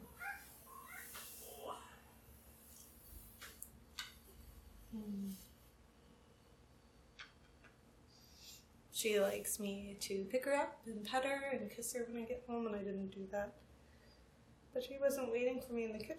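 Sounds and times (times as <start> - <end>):
female pet cat meowing at home: 0.1 - 1.2
speech: 4.9 - 5.5, 9.0 - 13.7, 14.8 - 16.1.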